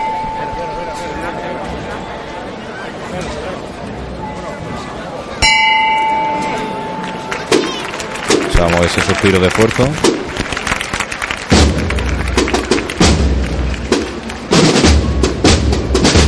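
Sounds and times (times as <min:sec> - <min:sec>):
single church bell tolling during procession: 0:00.0 - 0:02.5, 0:05.4 - 0:07.7
outdoor crowd murmur: 0:00.0 - 0:16.2
speech: 0:08.7 - 0:10.1.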